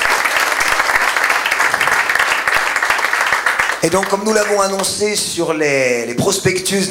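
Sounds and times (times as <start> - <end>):
large crowd applauding at an evening church gathering: 0.0 - 5.0
speech: 3.8 - 6.8.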